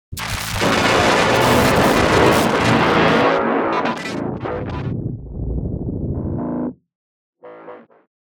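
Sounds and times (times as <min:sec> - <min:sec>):
loud glitchy noise: 0:00.1 - 0:06.8.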